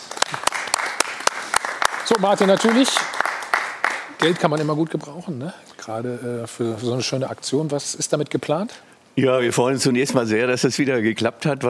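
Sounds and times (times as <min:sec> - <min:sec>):
sharp loud claps: 0:00.0 - 0:05.0
crowd applauding after a donation announcement: 0:00.0 - 0:05.1
speech: 0:02.1 - 0:03.2, 0:04.2 - 0:11.6.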